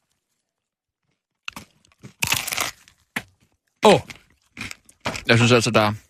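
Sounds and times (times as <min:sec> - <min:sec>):
loud crackling chewing of crispy fried pork: 0:00.0 - 0:05.6
biting into crunchy crispy fried pork: 0:01.4 - 0:05.3
speech: 0:03.8 - 0:04.1, 0:05.3 - 0:06.0.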